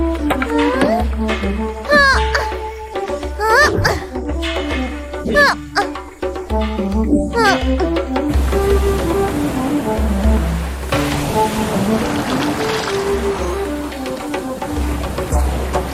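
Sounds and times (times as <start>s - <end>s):
ocean waves surging: 0.0s - 6.6s, 7.3s - 15.9s
flowing melodic music score: 0.0s - 15.9s.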